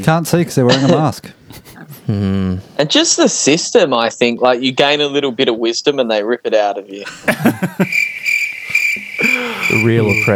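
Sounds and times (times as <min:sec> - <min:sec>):
speech: 0:00.0 - 0:08.4, 0:09.4 - 0:10.3
laughter: 0:00.6 - 0:02.6, 0:06.9 - 0:08.1, 0:08.7 - 0:10.3
brief low vocal bursts: 0:01.5 - 0:02.8
crickets chirping in a steady high-pitched trill: 0:06.9 - 0:10.3.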